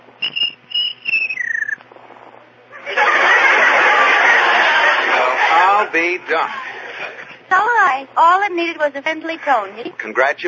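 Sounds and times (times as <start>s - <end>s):
cricket chirping: 0.2s - 1.8s
laughter: 2.7s - 7.5s
speech: 5.9s - 6.6s, 8.0s - 10.4s.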